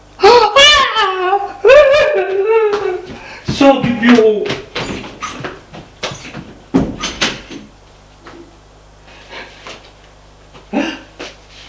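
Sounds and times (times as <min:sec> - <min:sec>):
woman crying and screaming: 0:00.2 - 0:03.1
speech: 0:03.6 - 0:04.6.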